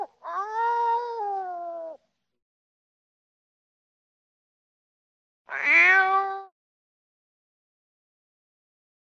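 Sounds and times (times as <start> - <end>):
cat meowing: 0.0 - 2.0, 5.5 - 6.6.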